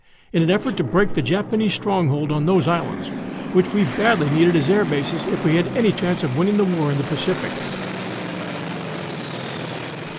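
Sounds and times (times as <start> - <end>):
speech: 0.3 - 7.8
F4U Corsair propeller fighter plane engine roaring: 2.5 - 10.1.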